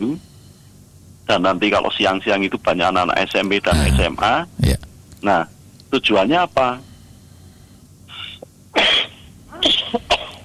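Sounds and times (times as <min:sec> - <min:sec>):
speech: 0:01.3 - 0:06.9
person coughing harshly: 0:03.7 - 0:04.9, 0:08.8 - 0:10.4.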